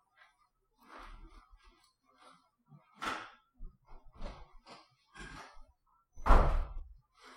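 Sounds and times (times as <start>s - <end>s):
door slamming: 6.2s - 6.8s.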